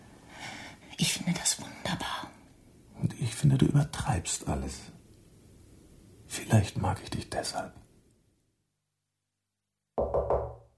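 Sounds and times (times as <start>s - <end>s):
speech: 1.0s - 2.3s, 3.0s - 5.0s, 6.5s - 7.8s
knocking on a door: 10.0s - 10.7s.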